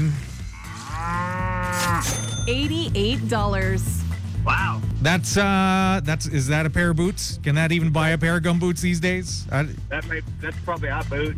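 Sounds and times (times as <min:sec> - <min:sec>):
cow mooing with a deep sustained bellow: 0:00.0 - 0:02.3
speech: 0:02.0 - 0:11.3.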